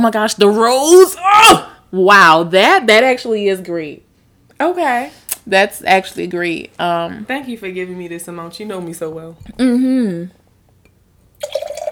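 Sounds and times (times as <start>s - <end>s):
speech: 0.0s - 10.4s
liquid pouring and splashing: 11.4s - 11.9s.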